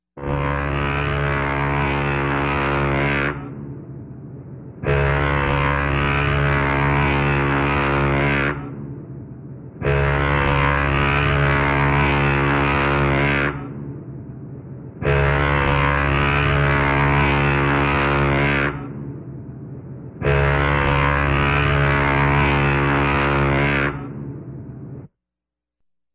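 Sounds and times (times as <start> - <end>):
ocean liner horn: 0.2 - 25.1.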